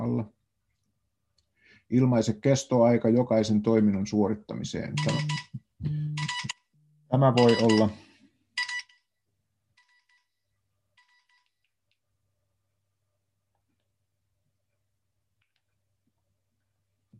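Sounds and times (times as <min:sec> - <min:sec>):
speech: 0:01.9 - 0:06.0, 0:07.1 - 0:08.0
low steady hum: 0:04.9 - 0:07.3
phone ringtone for an incoming call: 0:05.0 - 0:06.6, 0:07.4 - 0:08.0, 0:08.6 - 0:09.1.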